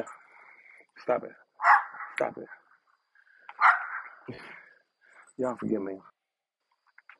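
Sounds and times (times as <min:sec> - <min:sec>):
speech: 0:01.0 - 0:02.6, 0:04.3 - 0:04.6, 0:05.4 - 0:06.1
small Jack Russell terrier barking at deer: 0:01.6 - 0:02.2, 0:03.6 - 0:04.2.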